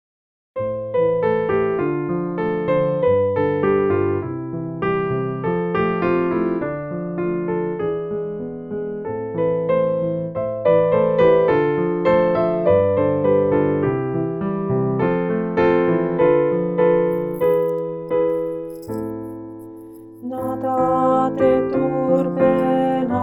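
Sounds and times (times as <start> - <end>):
piano for voice training: 0.6 - 23.2
person singing voice training exercises: 20.2 - 23.2.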